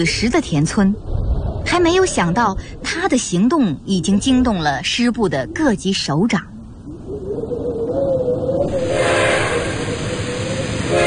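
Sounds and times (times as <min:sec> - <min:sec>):
speech: 0:00.0 - 0:06.5
low continuous rumbling of a train at a railway station: 0:00.0 - 0:11.0
train steam hiss at a railway station: 0:08.7 - 0:11.0
train whistle at a railway station: 0:08.7 - 0:11.0.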